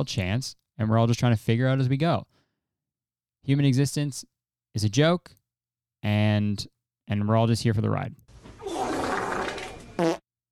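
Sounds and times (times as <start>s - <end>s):
speech: 0.0s - 2.3s, 3.4s - 5.4s, 6.0s - 8.2s
long raspy sputtering fart: 8.6s - 10.3s.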